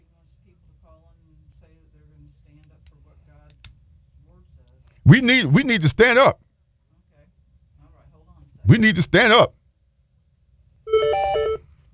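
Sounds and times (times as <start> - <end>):
low hum: 0.0 - 11.9
speech: 4.4 - 6.4, 8.7 - 9.6
electronic telephone tone as a call is picked up on a call-in line: 10.9 - 11.7.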